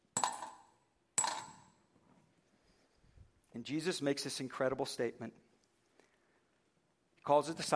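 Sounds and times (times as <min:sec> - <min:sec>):
two small copper coins dropping: 0:00.2 - 0:01.7
speech: 0:03.6 - 0:05.4, 0:07.2 - 0:07.7.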